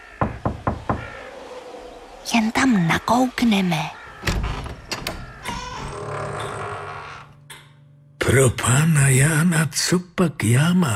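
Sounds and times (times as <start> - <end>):
firm knocking on a wooden door: 0.2 - 1.2
speech: 2.3 - 4.0, 8.3 - 10.9.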